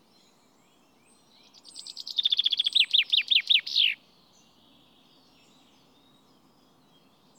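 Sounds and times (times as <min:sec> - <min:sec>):
common chaffinch Fringilla coelebs song: 0:00.0 - 0:04.5.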